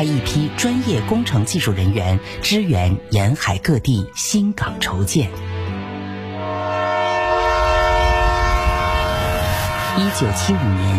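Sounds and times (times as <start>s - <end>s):
speech: 0.0s - 5.6s, 10.0s - 10.9s
passenger train horn: 6.2s - 10.9s.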